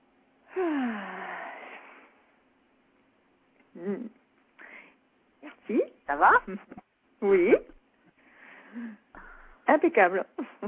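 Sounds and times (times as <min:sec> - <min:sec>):
long deep breath drawn in loudly: 0:00.5 - 0:02.3, 0:04.6 - 0:05.0, 0:08.2 - 0:09.6
speech: 0:03.8 - 0:04.2, 0:05.7 - 0:07.7, 0:09.7 - 0:10.6.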